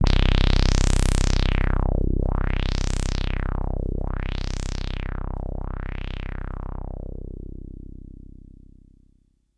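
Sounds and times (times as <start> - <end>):
low synth tone: 0.0 - 9.1.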